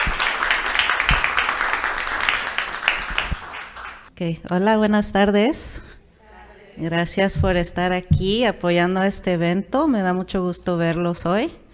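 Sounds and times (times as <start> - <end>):
audience at an event applauding two guests: 0.0 - 4.1
speech: 4.2 - 6.0, 6.8 - 11.6.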